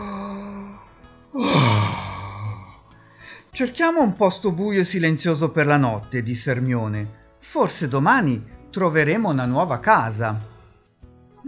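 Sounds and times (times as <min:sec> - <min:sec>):
person yawning: 0:00.0 - 0:03.0
low voiced sigh: 0:00.0 - 0:03.4
speech: 0:03.6 - 0:10.5.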